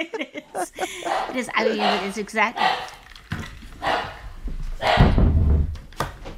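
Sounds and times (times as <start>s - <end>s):
laughter: 0.0s - 2.2s
speech: 0.0s - 3.0s
dogs barking: 0.8s - 3.1s, 3.8s - 5.2s.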